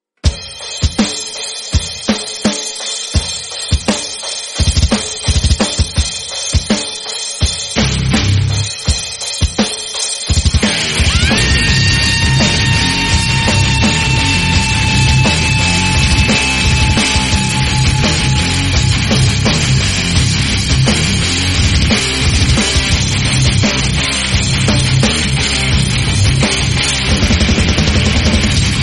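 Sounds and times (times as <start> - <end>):
drums: 0.2 - 28.8
guitar: 7.8 - 9.0, 10.3 - 28.8.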